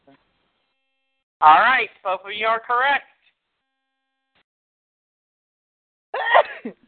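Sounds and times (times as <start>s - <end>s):
speech: 1.4s - 3.1s
woman sneezing: 6.2s - 6.6s.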